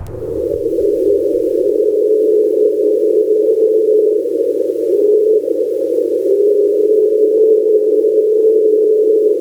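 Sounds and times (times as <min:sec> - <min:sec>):
faint low rumble: 0:00.0 - 0:03.0
loud unbroken droning tone from an underwater hydrophone recording: 0:00.0 - 0:09.3.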